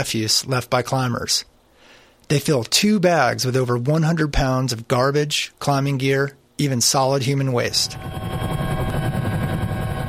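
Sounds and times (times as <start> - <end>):
speech: 0.0 - 1.5, 2.3 - 8.6
helicopter rotor thumping: 7.8 - 10.0.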